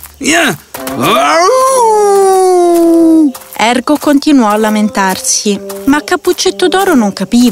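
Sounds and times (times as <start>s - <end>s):
speech: 0.2s - 2.1s, 3.3s - 7.5s
person imitating a wolf howling: 1.0s - 3.3s.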